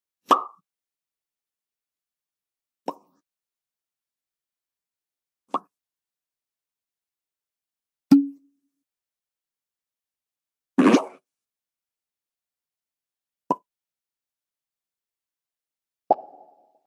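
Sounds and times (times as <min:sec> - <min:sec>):
pop sound effects: 0:00.3 - 0:00.6, 0:08.1 - 0:08.4, 0:16.1 - 0:16.5.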